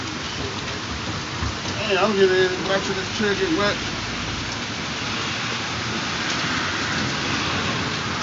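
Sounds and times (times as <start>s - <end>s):
heavy rain on a porch: 0.0s - 8.2s.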